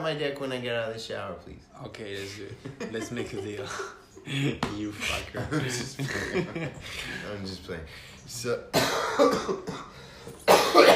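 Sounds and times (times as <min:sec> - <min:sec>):
speech: 0:00.0 - 0:10.9
laughter: 0:02.2 - 0:07.3
sick person coughing: 0:08.7 - 0:10.9.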